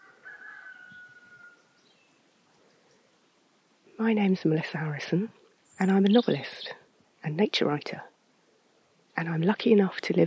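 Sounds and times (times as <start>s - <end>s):
rooster crowing: 0.0s - 1.8s
faint outdoor hush: 0.0s - 10.2s
speech: 4.0s - 8.1s, 9.2s - 10.2s.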